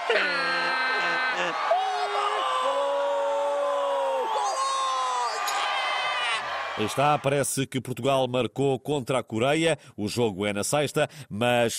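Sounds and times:
group of neighbours cheering and yelling a football goal celebration: 0.0s - 7.4s
speech: 0.1s - 0.4s, 6.8s - 11.7s.

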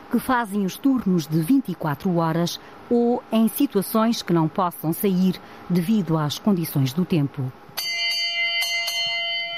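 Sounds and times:
speech: 0.1s - 7.6s
mess hall bell ringing: 7.8s - 9.5s.

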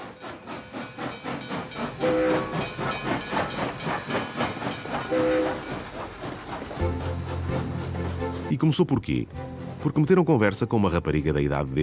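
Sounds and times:
steam train hissing steam: 0.0s - 8.5s
steam train chugging: 0.0s - 10.5s
steam train whistle tones: 2.0s - 2.5s, 5.1s - 5.6s
speech: 8.6s - 11.8s.

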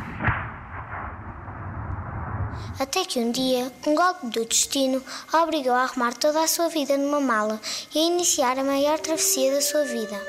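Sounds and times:
single sharp gunshot: 0.0s - 2.8s
low steady rumble: 0.1s - 2.9s
speech: 2.8s - 10.2s.

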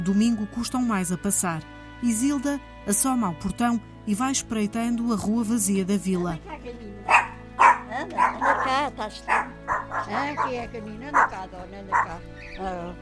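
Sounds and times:
speech: 0.0s - 7.3s, 7.9s - 12.9s
dog barking and yipping: 7.1s - 12.2s.

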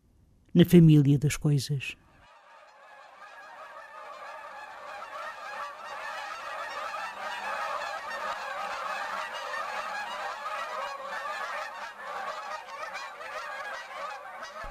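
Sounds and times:
speech: 0.6s - 2.0s
flock of wild geese honking: 2.0s - 14.7s.

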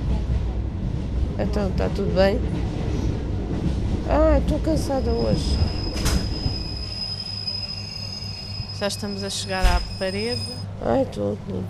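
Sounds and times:
low rumble inside a moving train carriage: 0.0s - 11.6s
speech: 1.4s - 2.8s, 4.1s - 5.8s, 8.8s - 11.6s
train wheels squealing: 5.2s - 10.6s.

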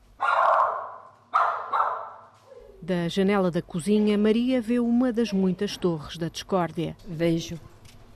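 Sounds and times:
dog barking: 0.2s - 2.7s
speech: 2.8s - 7.7s.

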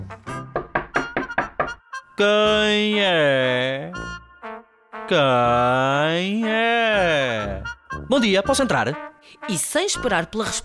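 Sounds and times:
firm knocks on a door: 0.5s - 1.8s
speech: 2.2s - 4.2s, 5.1s - 10.6s.

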